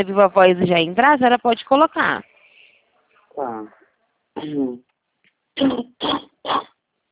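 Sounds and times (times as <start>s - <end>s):
speech: 0.0s - 2.3s, 3.4s - 3.8s, 4.4s - 4.9s, 5.6s - 6.7s
person coughing from allergy: 4.4s - 4.8s, 5.6s - 6.7s.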